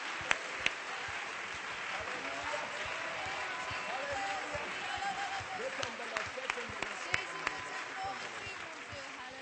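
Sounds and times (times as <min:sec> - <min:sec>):
church audience clapping in praise: 0:00.0 - 0:09.4
faint voices and cheering: 0:00.0 - 0:09.4.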